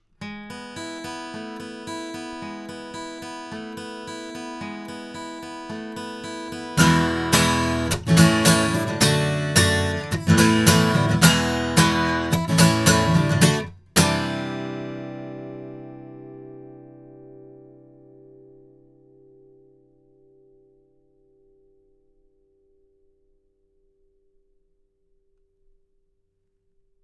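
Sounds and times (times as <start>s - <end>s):
guitar recorded with a cardioid condenser microphone: 0.0s - 24.4s.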